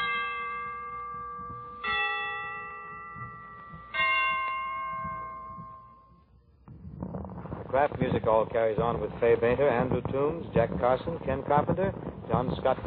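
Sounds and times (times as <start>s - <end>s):
Christmas church bells ringing: 0.0s - 6.4s
speech: 7.8s - 12.8s.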